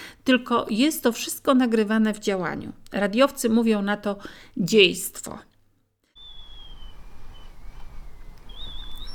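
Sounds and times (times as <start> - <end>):
speech: 0.2 - 5.5
wind gusts roaring: 6.2 - 9.1.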